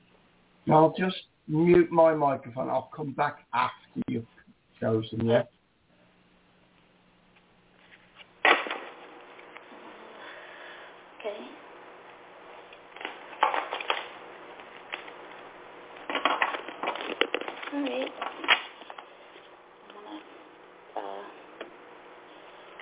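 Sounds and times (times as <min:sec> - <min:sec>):
speech: 0:00.7 - 0:05.6
playing cards shuffled and handled: 0:12.8 - 0:15.4, 0:16.0 - 0:19.1.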